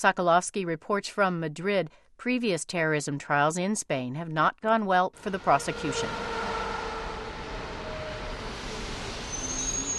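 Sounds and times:
speech: 0.0 - 6.4
brief high squeal of train wheels: 5.2 - 9.9
commuter train passing at railway station: 5.2 - 9.9
faint metallic whines: 5.2 - 9.9.

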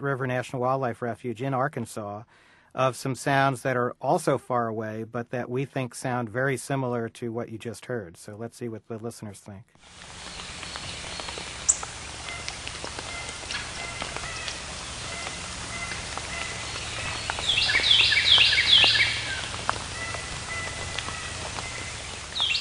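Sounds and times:
speech: 0.0 - 10.4
soft dripping and ticking sounds: 9.9 - 22.5
Carolina wren song with ringing chevron notes: 10.0 - 22.5.

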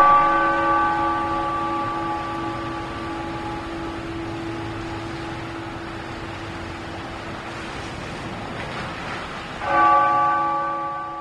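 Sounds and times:
church bells ringing: 0.0 - 7.2, 9.6 - 11.1.

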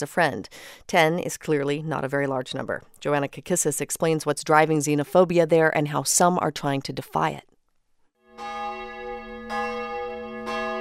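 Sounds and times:
speech: 0.0 - 7.5
church bell tolling at noon in Fod near Budapest Hungary: 8.2 - 10.7.

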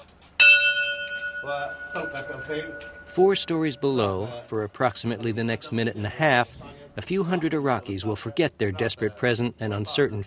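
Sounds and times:
racetrack starter's bell rung by race announcer at a horse race track in Iraq: 0.4 - 4.4
speech: 1.4 - 10.2.

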